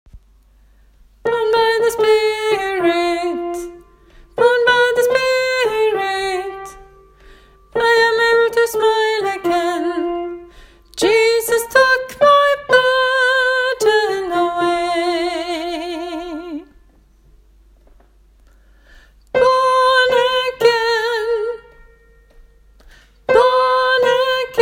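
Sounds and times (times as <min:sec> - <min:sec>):
soprano singing: 0:01.2 - 0:07.0, 0:07.7 - 0:16.8, 0:19.3 - 0:21.9, 0:23.3 - 0:24.6.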